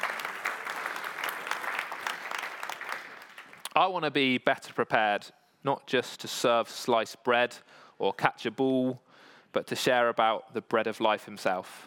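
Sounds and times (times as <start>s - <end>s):
crowd clapping: 0.0s - 3.8s
speech: 3.8s - 11.8s.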